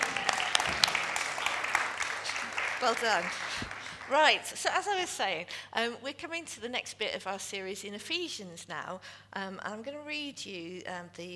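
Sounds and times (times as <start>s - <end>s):
audience clapping for the technical crew at a church gathering: 0.0s - 4.4s
speech: 2.8s - 11.3s.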